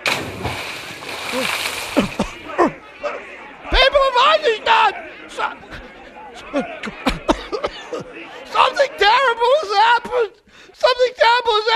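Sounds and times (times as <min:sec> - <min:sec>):
water splashed onto a person who has fainted: 0:00.0 - 0:02.4
laughter: 0:01.1 - 0:10.3.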